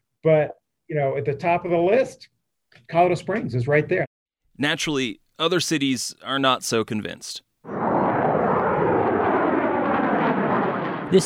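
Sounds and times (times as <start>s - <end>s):
speech: 0.2s - 7.8s
B-2 bomber flying over an Air Force plant in Palmdale California: 7.7s - 11.2s.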